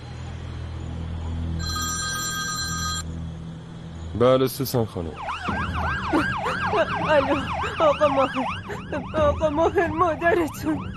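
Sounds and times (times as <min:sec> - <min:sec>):
telephone ringing: 0:01.6 - 0:03.1
speech: 0:04.2 - 0:10.9.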